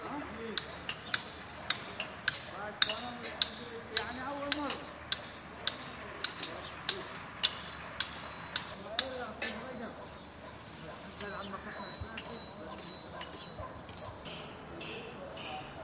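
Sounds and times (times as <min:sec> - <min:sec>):
voices in Egypt: 0:00.0 - 0:15.8
hammers striking in Egypt: 0:00.5 - 0:09.3, 0:13.2 - 0:15.8
distant dogs in Egypt: 0:06.4 - 0:15.8.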